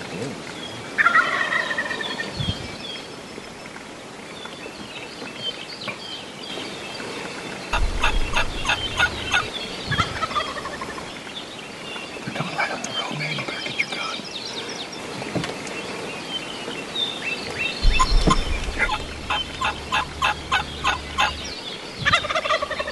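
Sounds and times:
lighter bird calls: 0.0 - 22.9
wild turkey gobblers gobbling outdoors: 1.0 - 2.3, 7.7 - 11.2, 17.8 - 22.9
low rumbling sounds: 7.7 - 11.5, 17.5 - 22.9.

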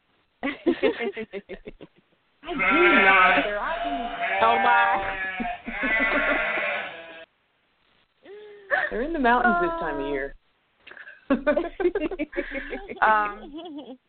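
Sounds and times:
laughter: 0.4 - 2.1, 5.2 - 6.9, 11.3 - 14.0
speech: 0.8 - 6.5, 8.9 - 10.4, 11.3 - 14.0
sheep bleating: 2.4 - 7.3.

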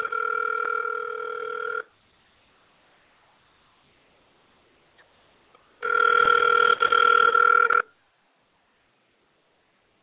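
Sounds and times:
outgoing cell phone call ringback tone: 0.0 - 1.9, 5.8 - 7.9.

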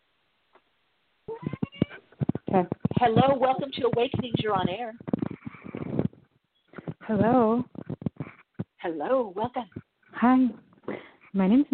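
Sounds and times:
small pet cat meowing in the background of a phone call: 1.3 - 2.1
speech: 2.5 - 5.1, 7.1 - 7.7, 8.8 - 10.6, 11.4 - 11.7.

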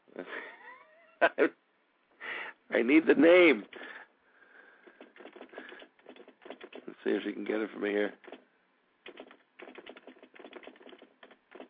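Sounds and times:
speech: 1.2 - 1.6, 2.7 - 3.9, 7.0 - 8.3
typing on a computer keyboard: 4.8 - 6.9, 8.1 - 8.4, 9.0 - 11.6.

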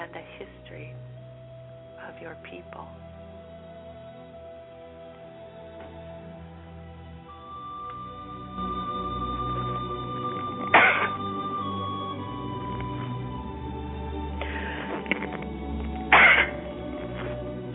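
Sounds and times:
low steady hum: 0.0 - 17.7
speech: 2.2 - 3.2
person sneezing: 10.7 - 11.2, 16.1 - 16.6.

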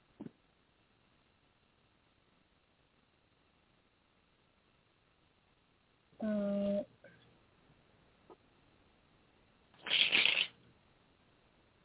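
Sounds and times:
French deck of cards being riffle-shuffled: 9.8 - 10.6.

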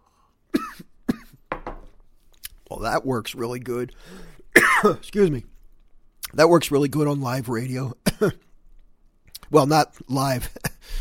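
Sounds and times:
person having a coughing fit: 0.5 - 1.4, 4.6 - 5.0, 8.0 - 8.5
speech: 2.8 - 5.5, 6.3 - 8.4, 9.5 - 10.9.

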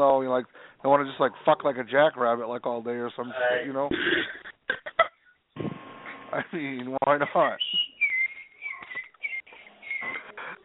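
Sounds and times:
speech: 0.0 - 4.9, 6.3 - 7.7
person whistling in the background: 7.6 - 10.5.

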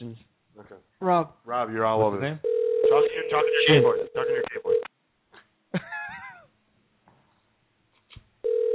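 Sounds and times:
speech: 1.0 - 4.6
telephone dial tone while being dialed for a crank call: 2.4 - 4.8, 8.4 - 8.7.

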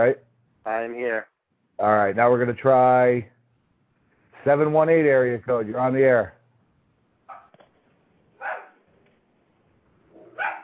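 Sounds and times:
speech: 0.0 - 3.3, 4.4 - 6.4
dog barking over a phone line: 7.3 - 7.5, 8.4 - 8.8, 10.1 - 10.6.

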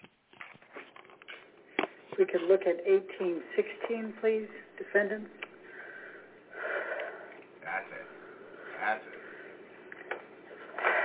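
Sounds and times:
speech: 2.2 - 5.4
heavy breathing: 5.6 - 9.8.

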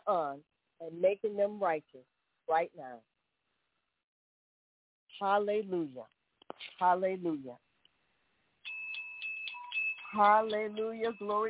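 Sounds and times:
speech: 0.1 - 3.1, 5.2 - 6.2, 6.8 - 7.6, 10.1 - 11.4
bright high-pitched bell ringing rapidly: 8.6 - 11.4.

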